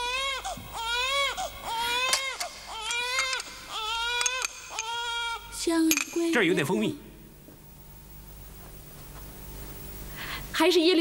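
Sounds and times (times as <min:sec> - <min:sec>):
hungry baby crying: 0:00.0 - 0:05.6
speech: 0:05.7 - 0:07.1, 0:10.6 - 0:10.9.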